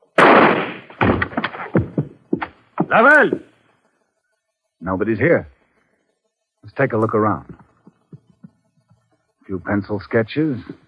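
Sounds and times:
gunshot fired to blast open a locked door: 0.2 - 2.0
heavy thuds and clatters: 0.2 - 3.5
speech: 2.9 - 3.5, 4.8 - 5.5, 6.6 - 7.7, 9.5 - 10.8.

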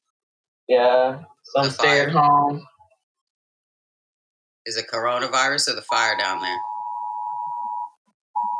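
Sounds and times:
speech: 0.7 - 2.7, 4.7 - 6.7
electronic emergency alert tone from a new phone: 6.2 - 8.5.

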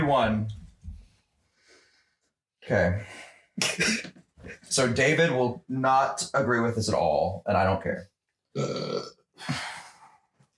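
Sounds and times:
speech: 0.1 - 0.6, 2.6 - 9.7
burp: 8.5 - 9.4.

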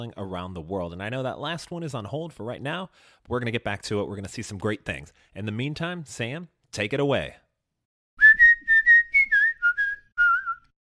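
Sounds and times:
speech: 0.0 - 7.4
professional whistler whistling a short bouncy jingle: 8.2 - 10.8.

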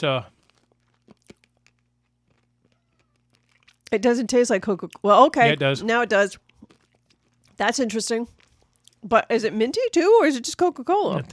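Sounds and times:
speech: 0.0 - 0.3, 3.9 - 6.8, 7.6 - 8.4, 9.0 - 11.3
faint steady hum: 0.0 - 11.3
crunching a small hard Tic Tac mint: 0.3 - 4.0, 6.4 - 7.6.

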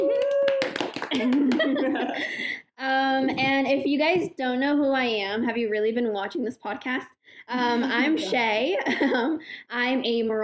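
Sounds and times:
few people clapping in applause: 0.0 - 2.0
speech: 1.2 - 10.4.

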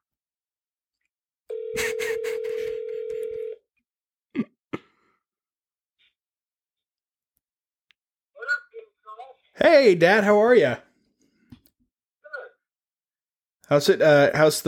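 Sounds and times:
outgoing phone line ringback tone: 1.5 - 3.6
speech: 9.6 - 10.8, 13.7 - 14.6.

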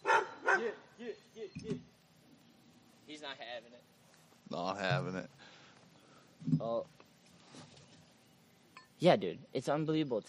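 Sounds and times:
dog barking: 0.0 - 0.8
speech: 4.5 - 5.4, 6.6 - 7.0, 9.0 - 10.2.

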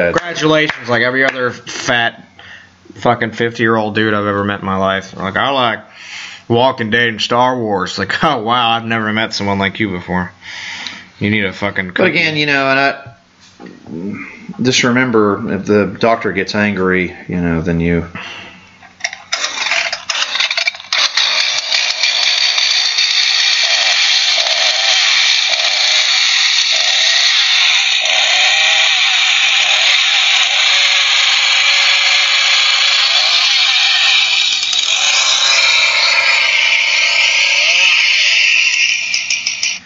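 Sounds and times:
speech: 0.0 - 2.3, 2.9 - 18.5
chainsaw running: 19.0 - 39.8.

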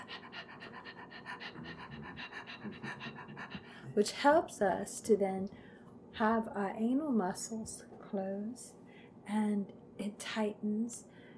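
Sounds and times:
person doing breath of fire, fast repetitive breathing: 0.0 - 4.0
speech: 4.0 - 5.6, 6.2 - 11.1.

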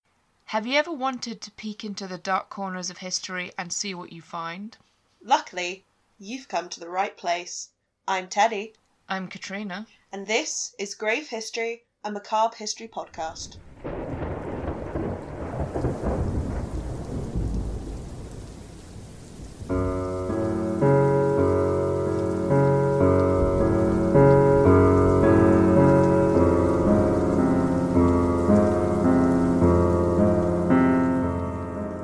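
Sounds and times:
speech: 0.5 - 13.7
low rumbles of thunder: 13.4 - 32.0
steady rain pouring: 13.5 - 32.0
sustained music: 19.7 - 32.0.

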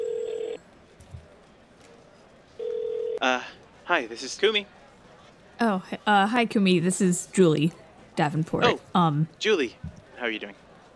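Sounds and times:
electronic telephone ringback tone on the caller's end: 0.0 - 0.6, 2.6 - 3.2
speech: 3.2 - 4.8, 5.6 - 10.6.

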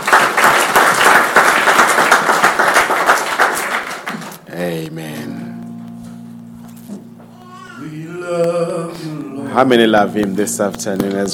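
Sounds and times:
audience applause in a room: 0.0 - 4.4
speech: 9.6 - 11.3.

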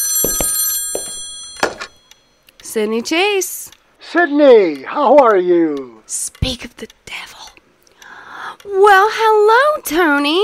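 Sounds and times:
telephone bell ringing with a high metallic tone: 0.0 - 2.4
speech: 2.8 - 7.0, 8.6 - 10.4.

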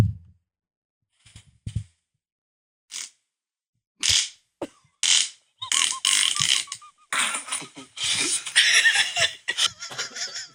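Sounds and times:
short low fart: 5.0 - 7.5
sputtering rattly bursts: 5.0 - 9.1
laughter: 5.6 - 10.5.

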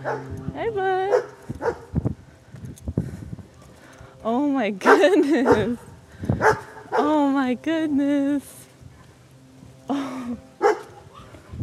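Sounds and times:
German Shepherd barking: 0.0 - 0.3, 1.1 - 1.9, 4.9 - 5.7, 6.4 - 7.1, 10.6 - 11.0
speech: 0.0 - 1.8, 4.2 - 8.6, 9.9 - 10.5.

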